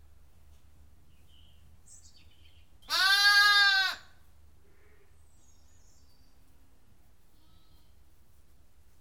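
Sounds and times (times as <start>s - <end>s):
lamb bleating: 2.9s - 4.1s.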